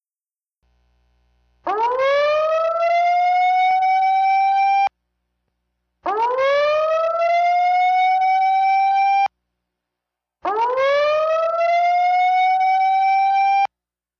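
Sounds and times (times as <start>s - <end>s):
tsunami warning siren wailing in a drill broadcast: 1.7s - 4.9s, 6.1s - 9.3s, 10.4s - 13.7s.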